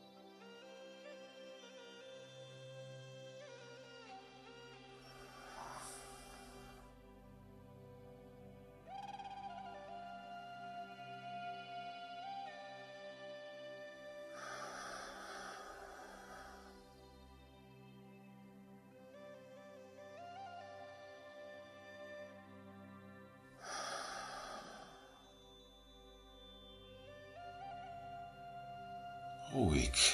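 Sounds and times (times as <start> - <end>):
soft steady musical drone: 0.0 - 30.1
deep inhales and full exhales: 5.0 - 7.0, 14.3 - 17.0, 23.6 - 25.4
speech: 29.5 - 30.1.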